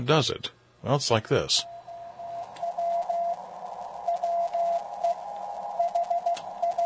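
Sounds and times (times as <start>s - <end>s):
speech: 0.0s - 1.7s
constant radio static hiss: 0.8s - 6.8s
Morse code beeps from an amateur radio receiver: 1.7s - 3.4s, 4.0s - 6.8s.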